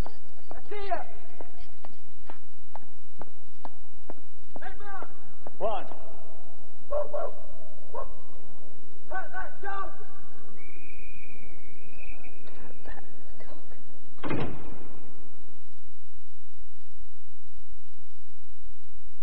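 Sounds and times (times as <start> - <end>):
drawn-out high whine: 0.0 - 19.2
faint steady hum: 0.0 - 19.2
dog barking: 6.9 - 8.3
sudden sharp thump: 14.2 - 14.9.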